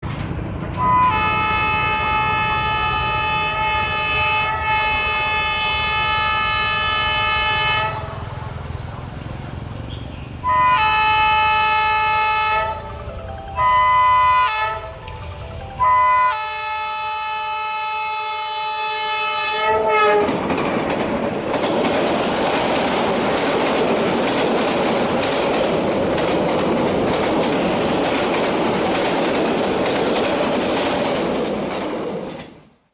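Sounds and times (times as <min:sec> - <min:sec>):
train running: 0:00.0 - 0:32.9
train horn: 0:00.7 - 0:08.3, 0:10.4 - 0:12.9, 0:13.6 - 0:15.0, 0:15.8 - 0:20.4.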